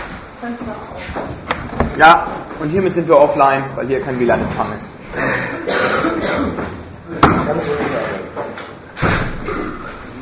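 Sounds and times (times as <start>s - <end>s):
speech: 0.4s - 5.3s
murmur of voices: 2.5s - 10.2s
door closing or opening with a thud: 9.0s - 9.5s.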